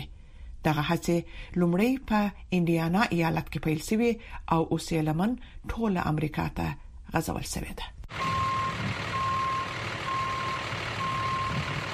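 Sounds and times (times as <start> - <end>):
speech: 0.6 - 8.3
truck engine rumble: 8.1 - 11.9
truck reversing beeps while practicing parking on a street in the Bronx: 8.1 - 11.9.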